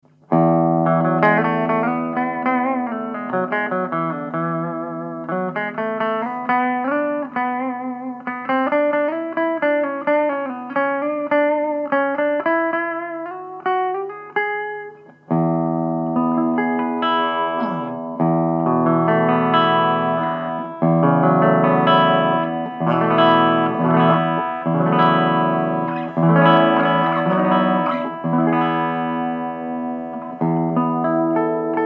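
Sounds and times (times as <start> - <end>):
clean electric guitar: 0.0 - 31.8.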